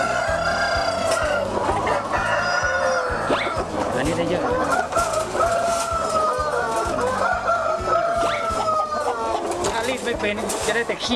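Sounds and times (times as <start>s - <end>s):
breeder rooster clucking while being handled: 0.0s - 11.1s
rustling: 4.7s - 7.4s, 9.3s - 11.1s
speech: 10.2s - 11.1s.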